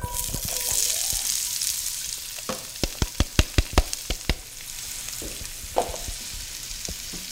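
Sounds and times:
onions sautéing in hot olive oil: 0.0 - 7.3
sharp bright taps: 2.5 - 4.6.

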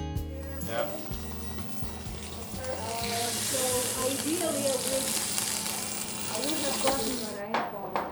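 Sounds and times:
short musical sting: 0.3 - 3.5
food frying in a pan: 0.3 - 7.5.

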